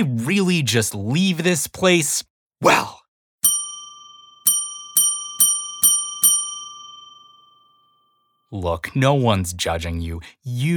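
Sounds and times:
speech: 0:00.0 - 0:02.9, 0:08.5 - 0:10.7
ornate brass service desk bell with push button dinging: 0:03.4 - 0:07.8.

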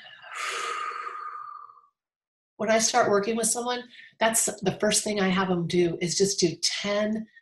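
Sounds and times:
deep breath in and out: 0:00.0 - 0:01.9
speech: 0:02.6 - 0:07.4.

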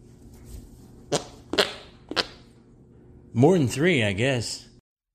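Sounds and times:
sputtering farts: 0:01.1 - 0:02.5
speech: 0:03.3 - 0:04.7.

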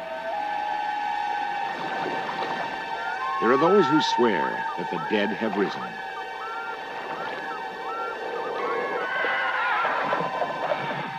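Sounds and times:
steady hum: 0:00.0 - 0:11.1
speech: 0:03.4 - 0:06.1
horse whinnying: 0:08.6 - 0:11.1.

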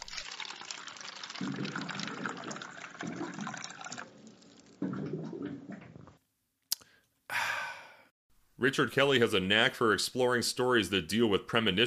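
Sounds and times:
water streaming from a water cooler spout into a cup: 0:00.0 - 0:05.1
water cooler gurgling glugs: 0:00.0 - 0:06.2
speech: 0:01.4 - 0:02.0, 0:08.6 - 0:11.8.

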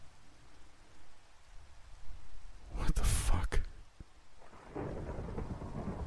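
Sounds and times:
steady rain: 0:00.0 - 0:06.0
sharp loud thunderclap rumbling: 0:04.4 - 0:06.0.

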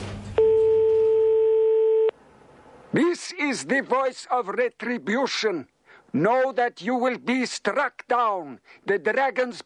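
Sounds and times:
electronic telephone line tone dialing a security line: 0:00.4 - 0:02.1
speech: 0:03.5 - 0:09.6.

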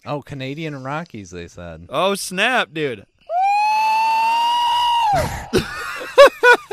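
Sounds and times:
speech: 0:00.0 - 0:03.1, 0:05.1 - 0:05.8
alleged Sasquatch night scream call: 0:03.3 - 0:06.3
short arching whoop-like calls: 0:03.3 - 0:06.3
laughter: 0:05.1 - 0:06.7.

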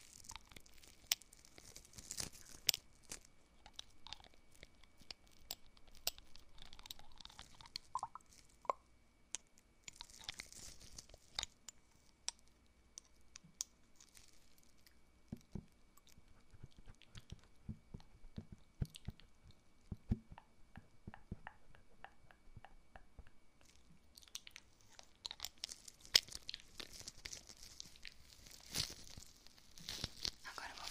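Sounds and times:
scratchy rustles of ear cleaning: 0:00.0 - 0:03.3, 0:25.5 - 0:30.9
soft crackles and pops of ear cleaning: 0:00.0 - 0:30.9.

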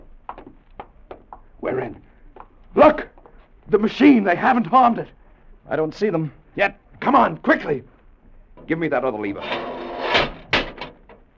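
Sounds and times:
speech: 0:01.6 - 0:02.1, 0:02.8 - 0:03.1, 0:03.7 - 0:07.9, 0:08.7 - 0:09.6
doors closing: 0:08.6 - 0:11.3.

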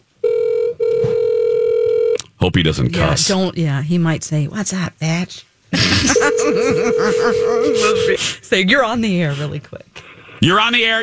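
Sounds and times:
cell phone call electronic ringing tone: 0:00.2 - 0:02.2, 0:06.1 - 0:08.2
speech: 0:02.4 - 0:11.0
laughter: 0:05.7 - 0:08.2.

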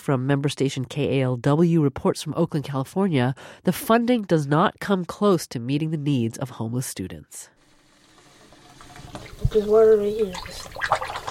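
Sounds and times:
speech: 0:00.0 - 0:07.6, 0:09.1 - 0:11.1
boy rinsing mouth with water after brushing teeth: 0:07.6 - 0:11.3
brief gargling humming tone: 0:09.3 - 0:11.3.

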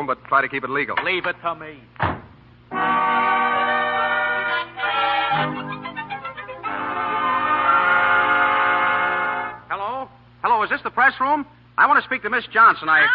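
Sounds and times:
speech: 0:00.0 - 0:02.1, 0:05.3 - 0:05.8, 0:10.6 - 0:13.1
train horn blaring at a railroad station: 0:02.7 - 0:09.7.

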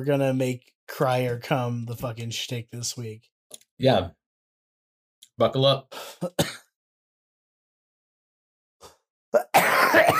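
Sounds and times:
speech: 0:00.0 - 0:04.2, 0:05.4 - 0:06.6
violent coughing: 0:06.1 - 0:06.7, 0:09.4 - 0:10.1.

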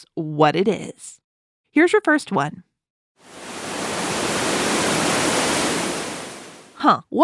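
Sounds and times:
speech: 0:00.0 - 0:01.2, 0:01.8 - 0:03.4, 0:06.8 - 0:07.2
roar of rushing water: 0:03.3 - 0:06.8.

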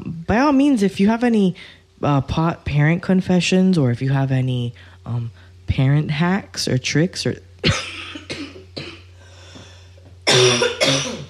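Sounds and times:
speech: 0:00.3 - 0:08.0
wet phlegmy coughing from a person with mucus in the throat: 0:07.6 - 0:09.1, 0:10.2 - 0:11.2.

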